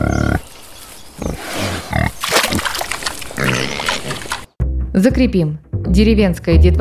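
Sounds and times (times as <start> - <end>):
wild boar grunting in a puddle: 1.2 - 4.5
speech: 5.0 - 6.7.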